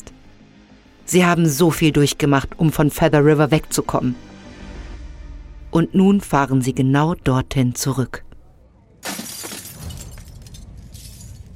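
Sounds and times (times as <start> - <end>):
speech: 1.1 - 4.3, 5.7 - 8.3
glass door being smashed: 9.0 - 11.5
glass shards scattering and tinkling down: 9.0 - 11.5.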